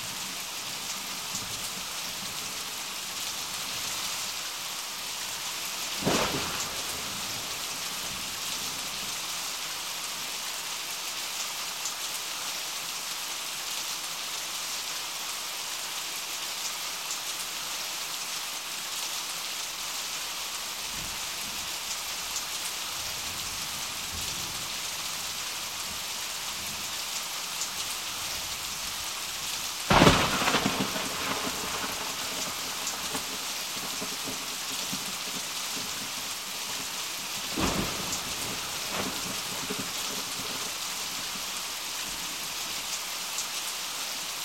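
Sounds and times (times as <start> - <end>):
steady rain: 0.0 - 44.4
short thunder cracks: 6.0 - 8.1, 29.9 - 35.1.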